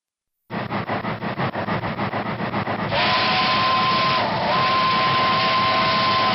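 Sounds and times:
miniature train steam engine chuffing: 0.5 - 6.3
miniature train steam whistle blasts: 2.9 - 6.3.

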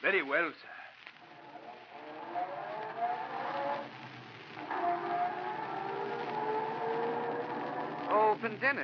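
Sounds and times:
speech: 0.0 - 0.8, 8.4 - 8.8
car engine starting up and accelerating: 1.4 - 8.4.

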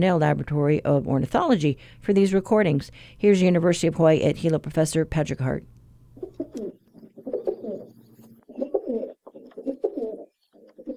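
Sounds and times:
speech: 0.0 - 5.8
rock pigeon cooing mating song: 6.2 - 10.9.

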